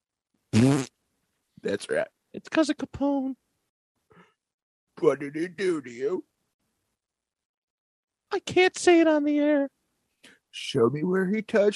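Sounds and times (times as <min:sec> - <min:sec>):
fart: 0:00.5 - 0:00.9
speech: 0:01.6 - 0:03.4, 0:05.0 - 0:06.3, 0:08.3 - 0:11.7.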